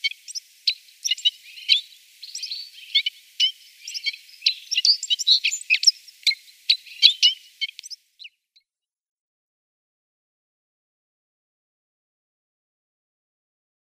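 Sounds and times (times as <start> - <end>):
Citril finch singing thin high chirps and twittering notes: 0.0 - 8.4.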